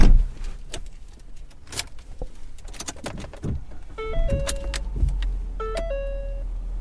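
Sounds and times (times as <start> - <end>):
low engine rumble inside a driving car: 0.0 - 6.7
bright two-note electronic chime: 5.6 - 6.5.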